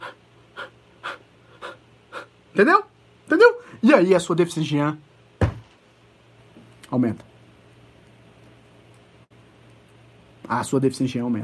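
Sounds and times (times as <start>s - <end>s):
short shallow apical panting breaths: 0.0s - 2.4s
speech: 2.6s - 5.1s, 6.9s - 7.3s, 10.5s - 11.4s.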